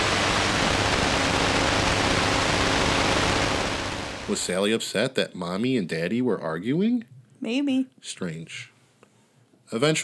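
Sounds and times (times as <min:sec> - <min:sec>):
loud static from a baby monitor: 0:00.0 - 0:04.7
speech: 0:04.3 - 0:08.7, 0:09.7 - 0:10.0.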